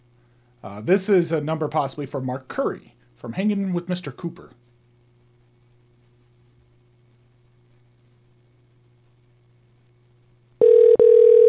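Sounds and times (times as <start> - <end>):
speech: 0.6 - 4.6
phone line ringing tone heard through the receiver: 10.6 - 11.4.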